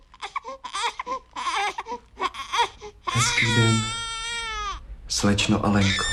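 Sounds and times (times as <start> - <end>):
just-woken baby fussing and babbling: 0.0 - 4.8
speech: 3.2 - 4.0, 5.1 - 6.1.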